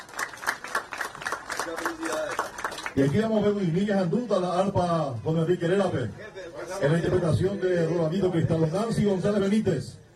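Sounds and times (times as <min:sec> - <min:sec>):
crowd clapping at a handover of homes in Arroyo Jú: 0:00.0 - 0:03.3
speech: 0:01.7 - 0:10.0.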